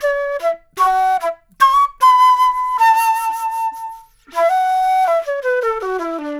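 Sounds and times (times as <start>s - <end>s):
jazz flute loop: 0.0s - 6.3s.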